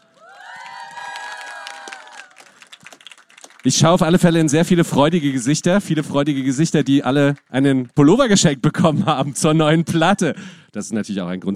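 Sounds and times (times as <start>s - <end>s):
audience cheering and whooping for a band: 0.0s - 3.4s
audience applause: 0.0s - 9.6s
speech: 3.6s - 11.5s.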